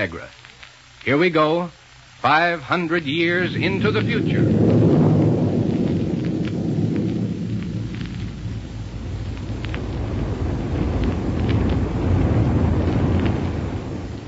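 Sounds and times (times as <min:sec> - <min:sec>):
speech: 0:00.0 - 0:00.4, 0:01.0 - 0:04.8
rocket plane roaring in flight: 0:03.3 - 0:14.2.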